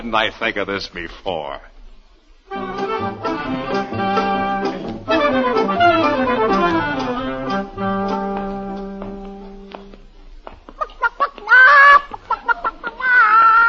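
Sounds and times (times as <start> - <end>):
speech: 0.0 - 1.7
orchestral music: 2.5 - 9.9
live chicken clucking and squawking while carried upside down by its feet: 10.7 - 13.6.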